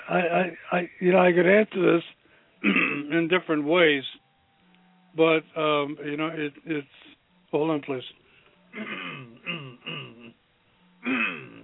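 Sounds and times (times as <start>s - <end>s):
speech: 0.1s - 4.2s, 5.2s - 9.7s, 11.0s - 11.5s
person clearing throat with something stuck in their throat: 2.6s - 3.1s, 8.7s - 10.4s, 11.0s - 11.6s.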